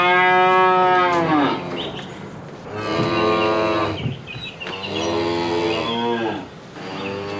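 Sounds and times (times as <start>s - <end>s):
cow mooing in a barn: 0.0s - 1.8s, 2.7s - 4.0s, 4.8s - 7.3s.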